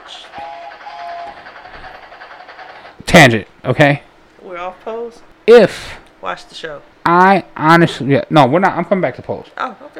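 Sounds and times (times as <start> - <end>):
train whistle sound effect: 0.0 - 1.5
speech: 3.2 - 4.1, 4.7 - 9.9.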